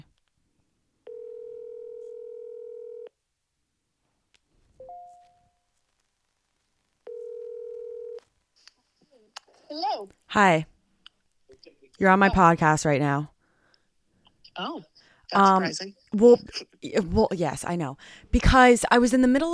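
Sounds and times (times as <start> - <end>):
faint noise: 0.0 - 19.5
telephone ringback tone on an outgoing call: 1.1 - 3.1, 4.8 - 5.6, 7.1 - 8.2
speech: 9.7 - 10.7, 12.0 - 13.3, 14.6 - 19.5.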